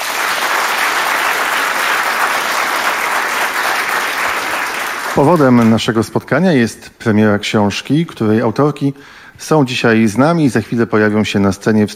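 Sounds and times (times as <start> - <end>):
studio audience applause at a radio studio book premiere: 0.0 - 5.9
speech: 5.2 - 11.9.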